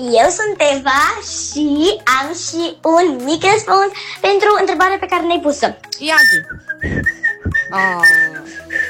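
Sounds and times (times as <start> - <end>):
speech: 0.0 - 8.8
person whistling: 6.1 - 8.8.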